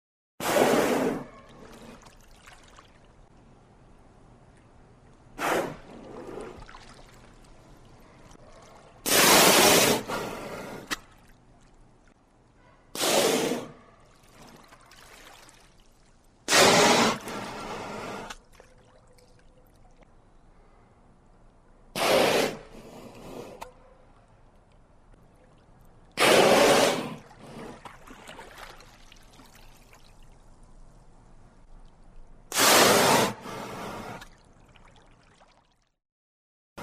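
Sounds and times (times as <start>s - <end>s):
killer whale blowing and gasping air: 0.4s - 2.0s, 5.4s - 6.7s, 9.0s - 10.9s, 16.5s - 18.4s, 22.0s - 23.6s, 26.2s - 27.9s, 32.5s - 34.3s.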